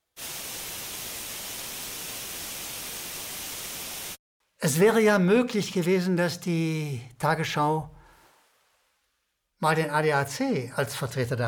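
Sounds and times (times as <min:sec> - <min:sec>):
loud burst of white noise: 0:00.0 - 0:04.2, 0:06.5 - 0:09.4
speech: 0:04.6 - 0:08.0, 0:09.6 - 0:11.4.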